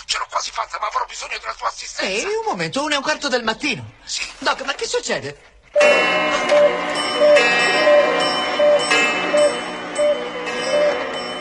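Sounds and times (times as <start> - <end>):
speech: 0.1 - 8.0
room full of clocks ticking: 5.7 - 11.3.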